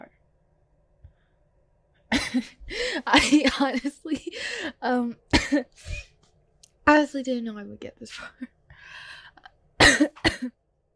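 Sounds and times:
person with bronchitis coughing: 2.1s - 4.3s, 5.3s - 6.1s, 9.8s - 10.6s
speech: 2.3s - 6.1s, 6.9s - 9.0s.

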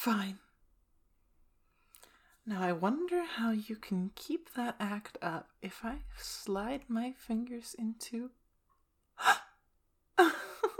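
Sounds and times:
speech: 0.0s - 0.4s, 2.4s - 8.4s, 9.2s - 9.4s
person gasping: 9.2s - 9.6s.

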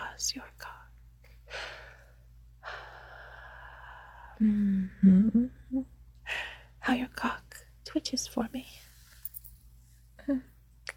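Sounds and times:
speech: 0.2s - 0.7s, 4.4s - 6.0s, 6.9s - 8.8s, 10.3s - 10.5s
person breathing slowly and heavily with soft airy exhales: 1.4s - 5.1s.

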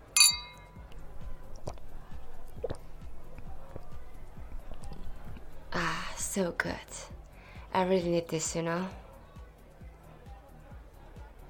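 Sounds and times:
glasses clinking in a toast at a party: 0.0s - 0.8s
speech: 6.3s - 7.1s, 7.8s - 9.0s.

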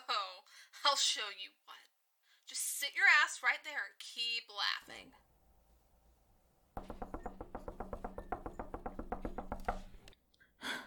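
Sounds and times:
speech: 0.9s - 1.8s, 2.5s - 5.2s
rapid insistent knocking on a door: 6.8s - 10.1s.

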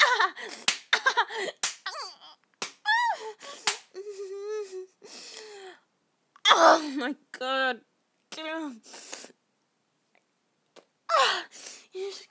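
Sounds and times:
breathy high-pitched vocal cries and moans: 0.0s - 5.0s, 6.4s - 7.0s
speech: 0.3s - 1.6s, 6.6s - 9.2s, 11.2s - 12.2s
hand slaps on skin: 0.6s - 1.0s, 1.6s - 1.9s, 2.6s - 2.8s, 3.6s - 3.9s.

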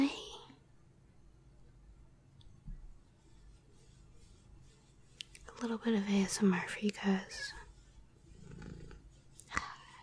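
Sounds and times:
speech: 5.6s - 7.6s
cat purring: 8.2s - 9.4s.

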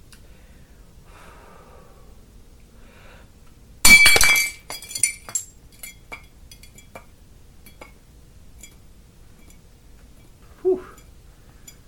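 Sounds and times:
glass shards tinkling and skittering: 3.9s - 7.0s
glass shattering in a kitchen: 3.9s - 7.0s.

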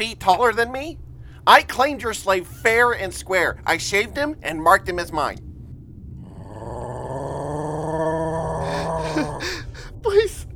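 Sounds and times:
speech: 0.0s - 5.5s
green-furred creature growling: 6.2s - 10.0s.

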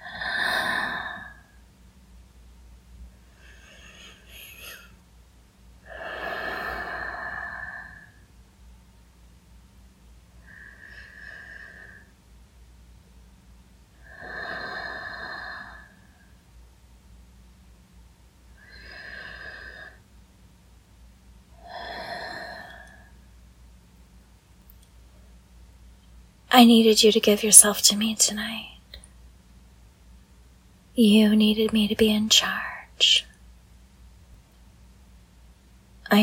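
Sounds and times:
slow deep human breathing: 0.0s - 1.6s, 3.2s - 5.0s, 5.8s - 8.4s, 10.4s - 12.2s, 14.0s - 16.4s, 18.6s - 20.1s, 21.6s - 23.4s
speech: 26.5s - 28.8s, 31.0s - 33.3s.

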